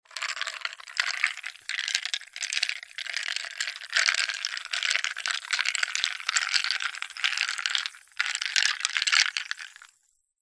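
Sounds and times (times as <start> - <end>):
ice stirred in a glass of cola: 0.1 - 10.0
cola soda fizzing in a glass: 0.2 - 9.9.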